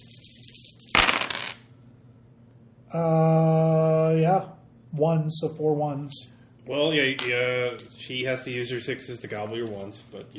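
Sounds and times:
two dice rolling on a table: 0.0s - 1.7s, 7.1s - 10.3s
speech: 2.9s - 10.3s.

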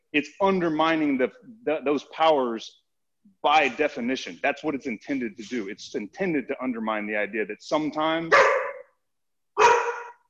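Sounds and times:
speech: 0.1s - 2.8s, 3.4s - 8.6s
German Shorthaired Pointer barking: 8.3s - 9.0s, 9.6s - 10.2s.

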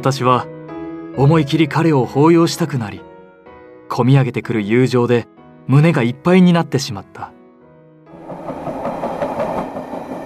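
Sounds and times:
speech: 0.0s - 0.5s, 1.2s - 3.1s, 3.9s - 7.4s
train wheels clickety-clacking over rail joints: 8.2s - 10.2s.

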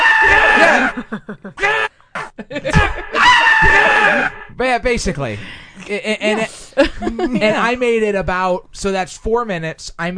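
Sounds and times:
single voice mimicking two people screaming over each other during a debate: 0.0s - 1.0s, 1.6s - 1.9s, 2.7s - 4.5s
laughter: 0.3s - 4.4s, 6.0s - 7.9s
speech: 1.0s - 2.8s, 4.7s - 10.1s.

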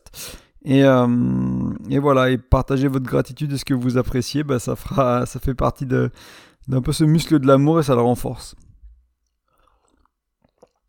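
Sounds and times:
speech: 0.2s - 8.6s
faint swallowing clicks: 8.6s - 10.8s
soft wet mouth noises and gentle slurp of a small sip: 8.6s - 10.8s.

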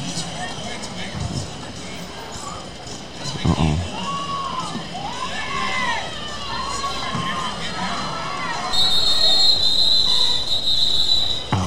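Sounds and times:
people screaming and yelling in a large venue: 0.0s - 11.6s
dense crowd roar in a large venue: 3.8s - 11.6s.

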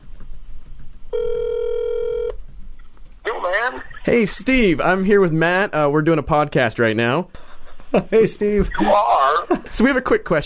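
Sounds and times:
faint noise: 0.0s - 10.4s
phone call ringback tone: 1.1s - 2.4s
speech: 3.7s - 10.4s.

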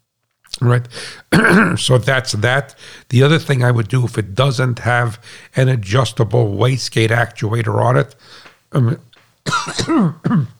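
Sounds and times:
speech: 0.6s - 10.5s
man clearing his throat: 1.3s - 2.0s, 8.8s - 10.5s.

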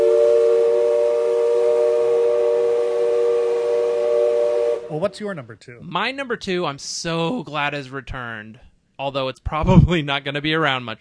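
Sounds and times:
train whistle blowing: 0.0s - 5.1s
speech: 5.0s - 10.9s.

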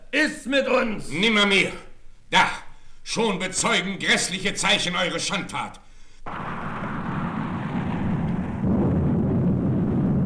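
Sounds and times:
speech: 0.1s - 6.5s
deep continuous roll of thunder: 6.3s - 10.2s.

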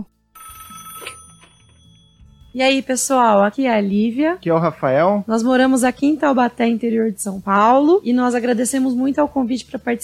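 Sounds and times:
telephone ringing with electronic trill: 0.4s - 3.4s
speech: 2.6s - 10.0s.

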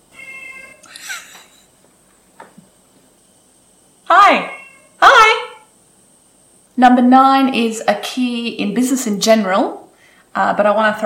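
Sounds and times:
cat meowing: 0.1s - 0.9s, 4.3s - 5.0s
speech: 6.8s - 9.8s, 10.4s - 11.0s.

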